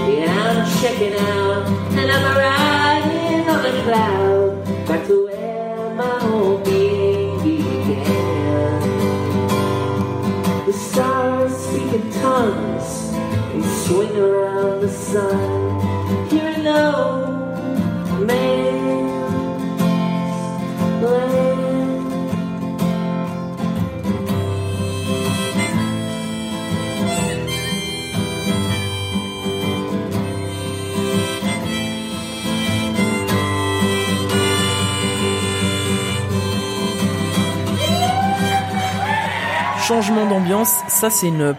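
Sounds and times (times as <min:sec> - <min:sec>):
person singing at a live acoustic concert in Hollywood: 0:00.0 - 0:09.8, 0:10.5 - 0:22.6, 0:24.6 - 0:40.7
strummed acoustic instruments at a live concert in Hollywood: 0:00.0 - 0:39.8
speech: 0:13.9 - 0:15.9, 0:39.9 - 0:41.5
audience shouts and cheers: 0:37.8 - 0:41.5.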